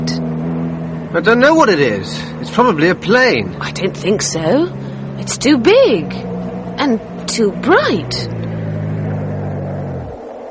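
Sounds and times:
car engine running: 0.0s - 10.4s
dull rumble: 0.0s - 10.4s
speech: 1.2s - 8.4s.

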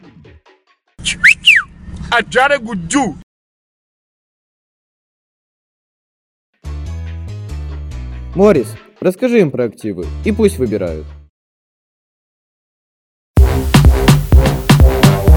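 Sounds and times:
music: 0.0s - 1.0s, 6.6s - 11.3s, 13.4s - 15.3s
speech: 1.0s - 1.3s, 2.1s - 3.2s, 8.4s - 11.2s
whistling with sharp high sliding notes: 1.0s - 1.8s.

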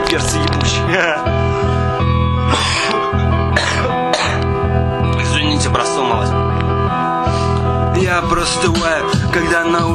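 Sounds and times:
steady droning musical backing: 0.0s - 9.9s
speech: 0.1s - 1.3s, 8.4s - 9.9s
harsh raspy coughing fit: 2.3s - 4.7s.

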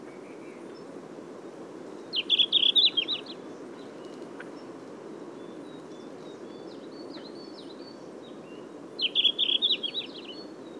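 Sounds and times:
Red-flanked bluetail Tarsiger cyanurus twittering song: 2.0s - 4.7s, 5.3s - 10.7s.

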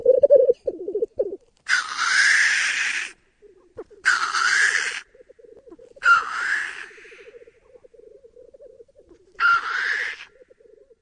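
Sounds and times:
soft continuous bubbling coo of black grouse: 0.0s - 1.4s, 5.0s - 10.9s
black grouse rasping hiss calls: 0.4s - 10.9s.

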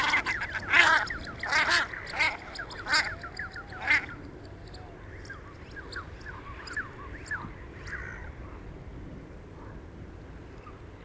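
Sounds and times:
Common shelduck harsh calls: 0.0s - 3.2s, 3.8s - 4.1s.

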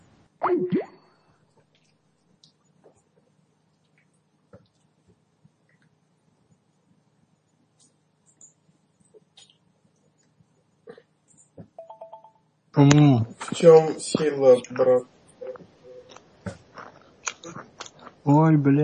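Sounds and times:
speech: 0.5s - 0.8s, 12.8s - 15.1s, 18.3s - 18.8s
electronic phone ringing tone as a call is placed: 11.8s - 12.4s.

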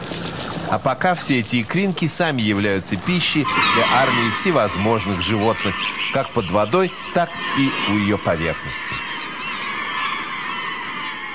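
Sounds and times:
many birds calling as they flock to feed on herring spawn: 0.0s - 11.3s
speech: 0.7s - 9.0s.

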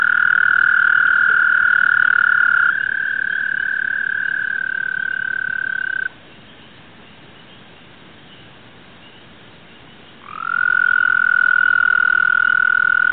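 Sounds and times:
American toad Bufo americanus trilling: 0.0s - 6.1s, 10.2s - 13.1s.

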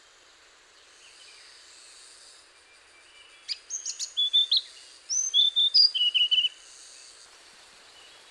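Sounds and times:
Hainan blue flycatcher Cyornis hainanus singing: 1.1s - 7.2s.

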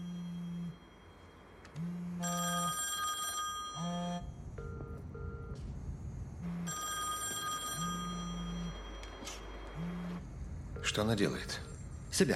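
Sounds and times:
low pulsing buzzing tone: 0.0s - 1.1s, 3.8s - 7.1s, 7.8s - 12.1s
telephone ringing: 0.0s - 5.6s, 6.5s - 10.2s
speech: 11.0s - 12.3s.

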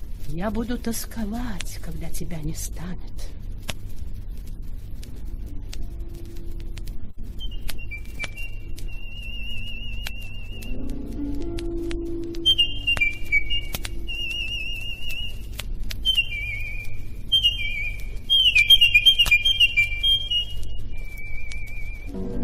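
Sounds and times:
low steady hum: 0.0s - 18.4s, 19.5s - 22.4s
speech: 0.3s - 3.4s
nightingale singing: 7.3s - 22.2s.

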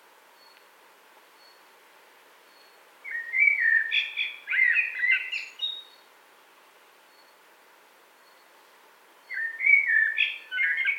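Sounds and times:
common blackbird singing a liquid whistled warble: 2.6s - 6.0s, 9.3s - 10.9s.

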